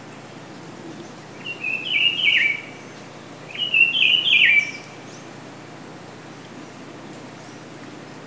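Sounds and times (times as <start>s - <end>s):
faint background hiss: 0.0s - 8.2s
Rufous-browed peppershrike singing on a golf course in Bahia, Brazil: 1.4s - 2.8s, 3.5s - 5.0s.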